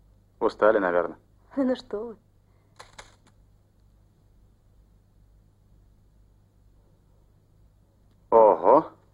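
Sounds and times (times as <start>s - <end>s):
faint hiss: 0.0s - 9.1s
speech: 0.4s - 2.2s
typing clicks: 2.8s - 3.4s.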